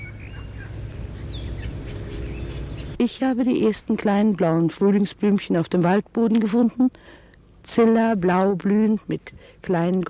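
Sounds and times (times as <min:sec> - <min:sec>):
golden oriole song: 0:00.0 - 0:03.0
steady low rumble of noise: 0:00.0 - 0:10.0
speech: 0:03.0 - 0:10.0.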